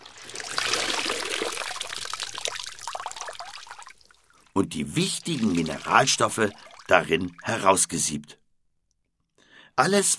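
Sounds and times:
water squeezed out of apple mush: 0.0s - 7.8s
speech: 4.6s - 8.4s, 9.8s - 10.1s.

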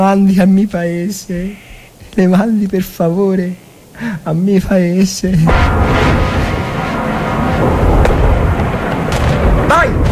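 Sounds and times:
speech: 0.0s - 6.2s
artillery fire sound effect in a radio drama: 5.5s - 10.1s.

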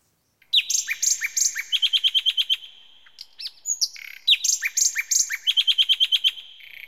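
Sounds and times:
small birds chirping in a garden: 0.0s - 6.8s.

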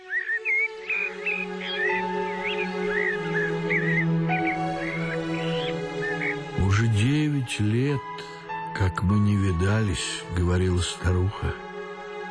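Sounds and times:
rooks cawing in a garden: 0.0s - 6.6s
starlings singing in a garden: 0.0s - 12.2s
speech: 7.5s - 8.1s, 8.8s - 11.6s.

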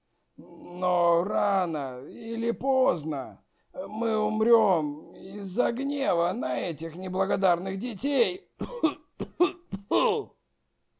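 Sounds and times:
speech: 0.8s - 10.3s
seriously ill man in a painful coughing fit: 8.6s - 10.4s.

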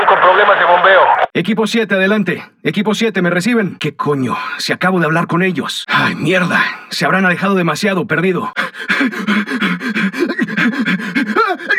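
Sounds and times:
speech: 0.4s - 11.7s
dog panting in a video game: 8.6s - 11.7s.

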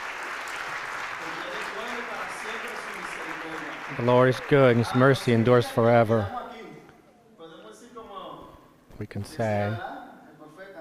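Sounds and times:
church congregation applause: 0.0s - 5.8s
speech: 4.0s - 6.4s, 9.0s - 9.9s.

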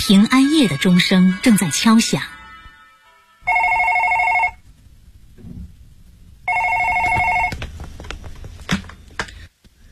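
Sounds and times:
speech: 0.0s - 2.4s
telephone ringing with trilling electronic rings: 3.4s - 4.6s, 6.4s - 7.6s
soft rustling: 6.8s - 9.2s.

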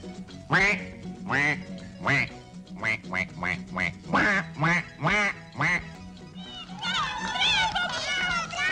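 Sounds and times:
performer's voice imitating a duck quacking: 0.5s - 6.0s
children's excited voices: 6.4s - 8.7s.

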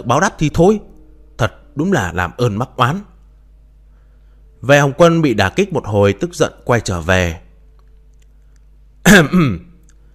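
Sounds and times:
speech: 0.0s - 3.1s, 4.6s - 7.4s, 9.0s - 9.7s
young man clearing his throat with a single cough: 9.1s - 9.8s.

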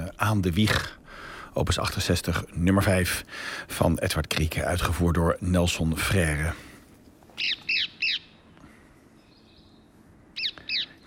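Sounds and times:
faint background noise: 0.0s - 11.0s
speech: 0.2s - 1.0s, 1.6s - 6.7s, 7.4s - 7.6s
Rose-ringed Parakeet screeching squawks: 7.4s - 8.3s.

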